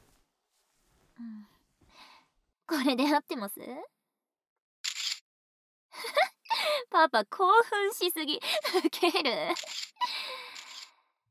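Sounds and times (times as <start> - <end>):
speech: 2.7 - 4.0, 6.9 - 9.8
camera shutter clicking: 4.9 - 5.2.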